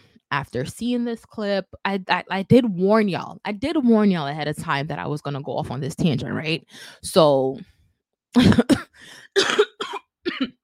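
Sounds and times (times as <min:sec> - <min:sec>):
speech: 0:00.3 - 0:07.7, 0:08.3 - 0:10.6
wheezy breath: 0:09.0 - 0:09.4
man with a lingering cough coughing harshly: 0:09.4 - 0:10.6.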